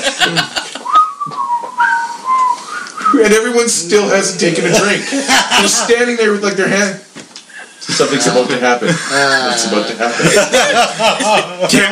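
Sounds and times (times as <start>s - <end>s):
laughter: 0.0s - 1.1s, 4.6s - 6.3s, 7.8s - 11.9s
speech: 0.3s - 0.6s, 3.2s - 7.0s, 7.9s - 11.9s
person whistling a short wavering tune: 0.8s - 3.2s.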